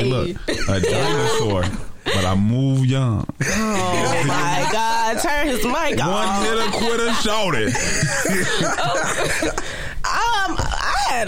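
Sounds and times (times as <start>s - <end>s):
speech: 0.0s - 9.7s
person coughing: 0.5s - 2.4s
people laughing and chuckling: 0.6s - 1.9s, 3.4s - 9.9s.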